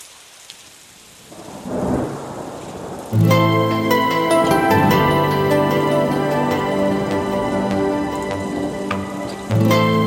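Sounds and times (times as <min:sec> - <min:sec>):
steady falling rain: 0:00.0 - 0:10.0
music with sustained tones: 0:03.2 - 0:10.0.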